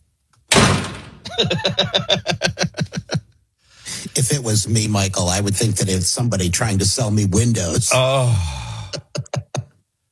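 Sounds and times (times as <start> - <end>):
heavy noisy thump: 0.5 - 1.4
laughter: 1.2 - 3.3, 9.0 - 9.7
speech: 1.4 - 3.0, 4.2 - 9.3.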